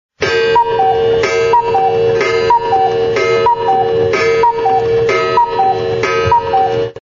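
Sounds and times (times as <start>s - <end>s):
cuckoo clock: 0.3s - 7.0s.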